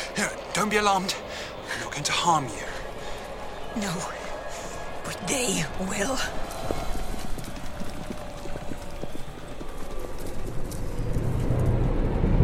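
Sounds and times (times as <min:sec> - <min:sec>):
speech: 0:00.2 - 0:01.3, 0:01.9 - 0:02.7, 0:03.7 - 0:04.2, 0:05.1 - 0:06.9
herd of horses galloping in mist with clattering hooves: 0:02.7 - 0:12.3.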